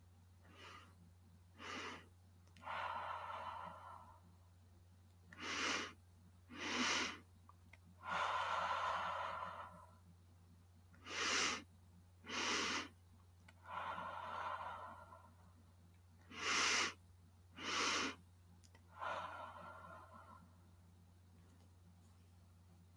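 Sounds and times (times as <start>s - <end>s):
faint low steady hum: 0.0s - 22.9s
slow deep breathing during a meditation session: 0.4s - 4.5s, 5.3s - 7.3s, 8.0s - 10.1s, 10.9s - 15.6s, 16.2s - 20.8s.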